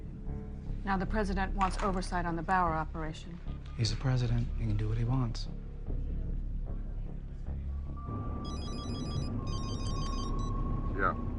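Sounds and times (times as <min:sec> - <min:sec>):
low rumbling background: 0:00.0 - 0:11.3
speech: 0:00.8 - 0:05.6, 0:11.0 - 0:11.3
phone ringing with an electronic warbling trill: 0:08.4 - 0:10.5.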